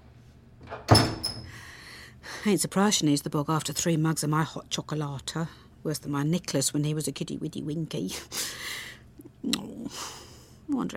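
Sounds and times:
door opening and swinging shut: 0.6s - 1.6s
speech: 2.4s - 8.8s, 10.7s - 10.9s.

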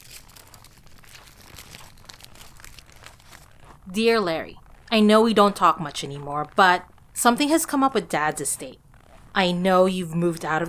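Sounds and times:
paper letter being opened with crinkling and rustling: 0.0s - 3.5s
speech: 3.9s - 8.8s, 9.4s - 10.6s.

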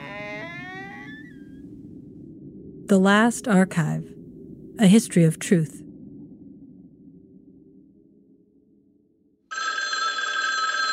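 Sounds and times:
low rumble: 0.0s - 9.3s
speech: 2.9s - 4.2s, 4.8s - 5.8s
loud bright telephone bell ringing: 9.5s - 10.9s.

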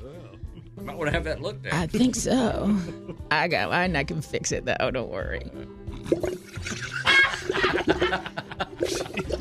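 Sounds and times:
laughter: 0.5s - 3.2s, 6.7s - 9.4s
speech: 0.8s - 6.9s, 7.8s - 9.0s
straw slurping the bottom of a nearly empty drink: 8.8s - 9.4s.

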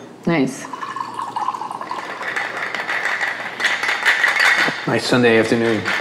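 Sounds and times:
speech: 0.3s - 0.8s, 4.9s - 6.0s
Spumante Brut sparkling wine and club soda cocktail strained and poured into a glass: 0.6s - 4.3s.

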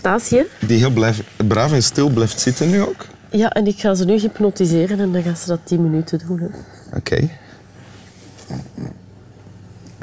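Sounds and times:
speech: 0.0s - 7.5s, 8.5s - 9.0s
steady low hum: 0.0s - 10.0s
pug snorting grunts while breathing: 8.0s - 10.0s.

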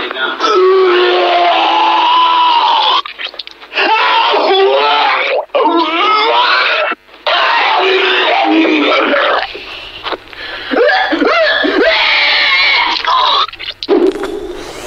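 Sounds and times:
people screaming loudly while vomiting: 0.4s - 3.1s, 3.7s - 9.5s, 10.6s - 14.2s
gurgling retching: 10.9s - 14.8s.

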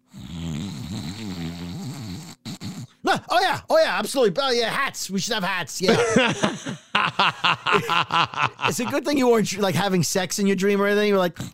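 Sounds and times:
person snoring while asleep: 0.0s - 3.0s
speech: 3.1s - 11.5s
laughter: 5.8s - 9.4s.

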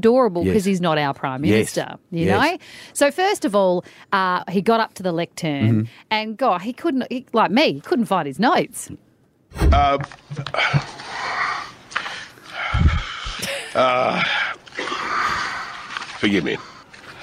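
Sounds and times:
speech: 0.0s - 11.4s, 13.8s - 14.4s, 16.2s - 16.7s
person heavy breathing into a microphone: 2.6s - 3.0s, 10.5s - 13.5s, 16.5s - 17.2s.

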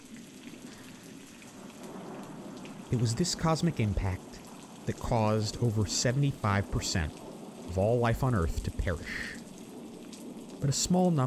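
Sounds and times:
heavy rain pouring down: 0.0s - 11.2s
low rumble of thunder: 0.0s - 11.2s
speech: 2.9s - 9.4s, 10.6s - 11.2s.

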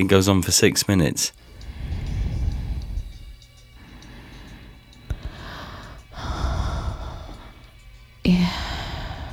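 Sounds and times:
speech: 0.0s - 1.5s
recorded music track of heavy breathing with gasping and snorting: 1.4s - 9.3s.

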